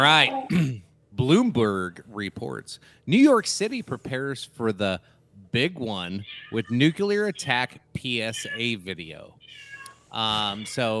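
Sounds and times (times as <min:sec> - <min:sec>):
faint noise: 0:00.0 - 0:10.9
speech: 0:00.0 - 0:10.9
cat meowing loudly: 0:06.2 - 0:07.1, 0:08.4 - 0:08.8, 0:09.4 - 0:10.9.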